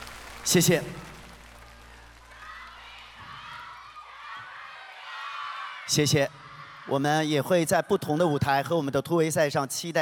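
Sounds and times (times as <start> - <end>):
large audience applauding and cheering: 0.0 - 6.1
speech: 0.5 - 1.1, 5.9 - 9.9
scattered shouts and voices from the crowd: 1.6 - 7.0.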